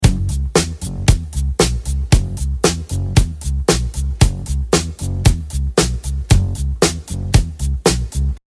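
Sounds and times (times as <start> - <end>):
bass: 0.0 - 8.4
drums: 0.0 - 8.4.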